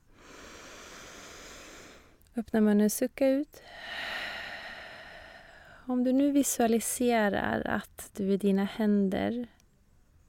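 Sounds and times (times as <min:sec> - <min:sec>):
long steady breath drawn in through the nose: 0:00.0 - 0:02.2, 0:03.6 - 0:05.8
speech: 0:02.4 - 0:04.0, 0:05.9 - 0:09.6.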